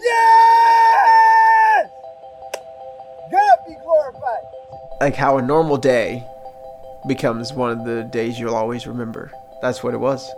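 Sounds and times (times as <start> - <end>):
person screaming with joy on hearing a pipeline canceled: 0.0 - 1.9
faint steady tone: 1.9 - 10.3
speech: 5.0 - 6.3, 7.0 - 10.3.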